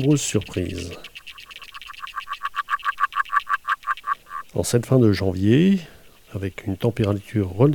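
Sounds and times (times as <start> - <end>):
speech: 0.0 - 1.4, 4.6 - 7.7
agile frog calling underwater in a pond, hydrophone recording: 0.0 - 4.6.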